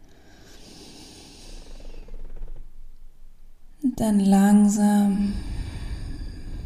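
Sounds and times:
deep airy breath drawn in and slowly let out: 0.0s - 2.5s, 5.1s - 6.6s
speech: 4.0s - 5.5s.

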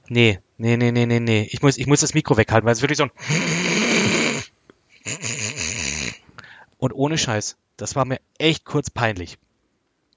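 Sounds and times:
speech: 0.1s - 3.6s, 6.8s - 9.4s
person imitating loud snoring of a sleeping mother: 3.2s - 6.2s.

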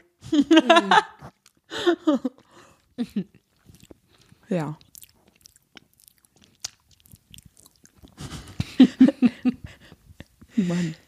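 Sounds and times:
laughter: 0.3s - 1.2s, 8.2s - 9.8s
speech: 0.3s - 1.2s, 1.8s - 2.4s, 3.0s - 3.4s, 4.5s - 4.8s, 10.6s - 11.0s
person chewing and lip-smacking while eating: 1.2s - 1.7s, 2.3s - 8.7s
breathing: 1.7s - 2.9s, 9.6s - 11.0s
rhythmic crunchy bites: 3.6s - 8.2s.

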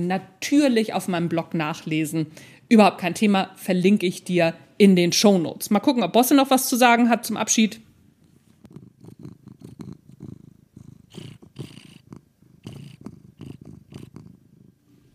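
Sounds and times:
speech: 0.0s - 7.8s
cat purring: 7.8s - 15.1s.

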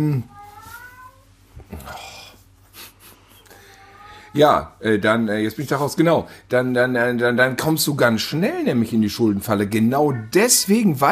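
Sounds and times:
speech: 0.0s - 0.3s, 4.4s - 11.1s
low hum: 0.0s - 11.1s
cats meowing and squabbling: 0.2s - 2.0s, 3.5s - 4.5s
scuffling noise: 0.4s - 1.2s.

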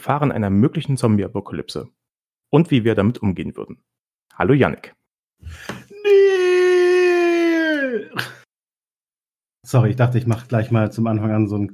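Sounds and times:
speech: 0.0s - 6.3s, 9.6s - 11.7s
brief breathy vocal sounds: 5.4s - 8.4s
timid fearful human scream: 5.5s - 8.4s.

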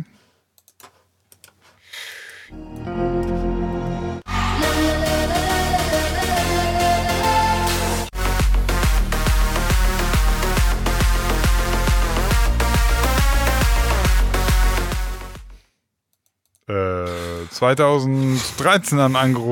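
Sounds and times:
pop single played back: 2.5s - 15.3s
speech: 17.6s - 19.4s.

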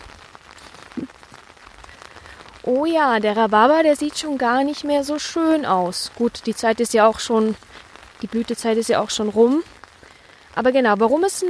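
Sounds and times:
steady rain falling on leaves and ground in a garden: 0.0s - 11.4s
speech: 1.0s - 1.2s, 2.6s - 9.8s, 10.6s - 11.4s.

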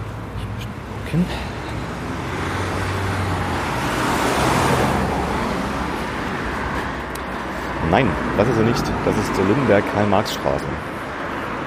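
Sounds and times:
steady street traffic: 0.0s - 11.6s
speech: 1.1s - 1.6s, 7.9s - 10.9s
car passing by: 1.4s - 10.2s.

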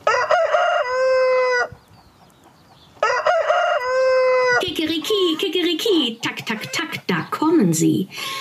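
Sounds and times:
rooster crowing: 0.0s - 1.8s, 3.0s - 4.6s
speech: 5.8s - 8.4s.

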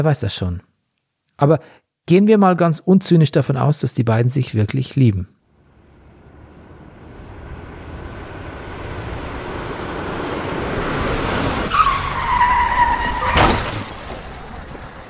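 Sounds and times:
speech: 0.0s - 0.7s, 1.4s - 5.4s
Taunus car engine and road noise on a slippery road: 5.5s - 15.0s
car tires screeching on a slippery road: 5.7s - 15.0s
car crash on a slippery road: 11.0s - 15.0s.

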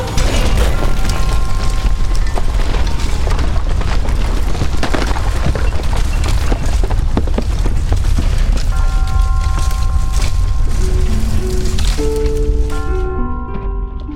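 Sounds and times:
bomb explosion: 0.2s - 8.9s
bomb debris crackling and splintering: 0.2s - 14.1s.

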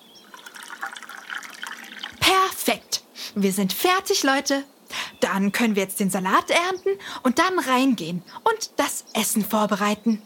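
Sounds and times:
water pouring from a watering can onto soil: 0.2s - 2.4s
speech: 3.4s - 10.2s.

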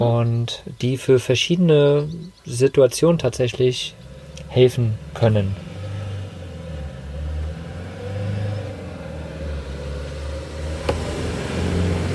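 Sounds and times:
speech: 0.0s - 5.7s
car driving by: 3.2s - 12.1s.

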